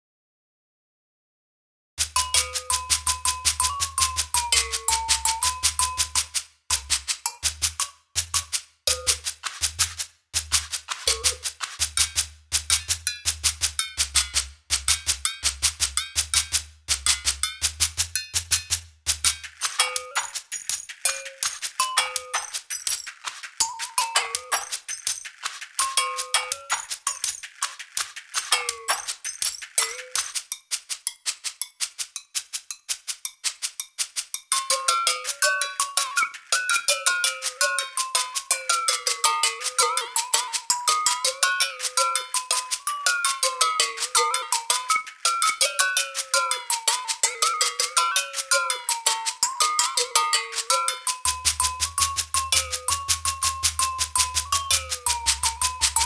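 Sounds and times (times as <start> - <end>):
world percussion: 2.0 - 56.0.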